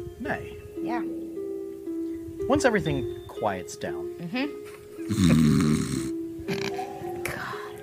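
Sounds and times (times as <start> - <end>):
speech: 0.3 - 1.1, 2.5 - 5.5
sleeping person snoring: 5.1 - 7.8.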